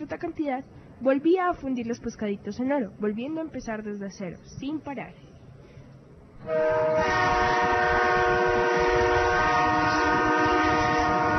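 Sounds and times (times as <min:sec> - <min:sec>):
low rumbling of a train: 0:00.0 - 0:11.3
speech: 0:00.1 - 0:05.3, 0:06.4 - 0:08.4
train horn: 0:06.4 - 0:11.3.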